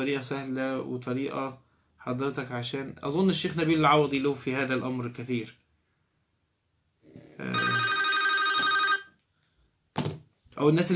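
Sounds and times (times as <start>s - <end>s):
speech: 0.0s - 5.6s, 7.4s - 7.7s, 10.6s - 10.9s
mobile phone electronic ringtone: 7.5s - 9.2s.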